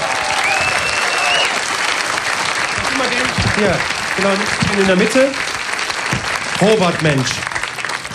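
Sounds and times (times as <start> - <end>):
cheering voices: 0.0 - 8.1
large audience applauding at an outdoor festival stage: 0.0 - 8.1
scattered whistles from the audience: 0.3 - 1.6
speech: 3.6 - 5.5, 6.6 - 7.5.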